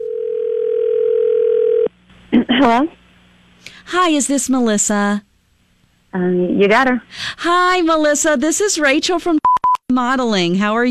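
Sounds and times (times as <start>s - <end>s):
telephone line tone: 0.0s - 1.9s
speech: 2.6s - 3.0s, 3.8s - 5.3s, 6.1s - 10.8s.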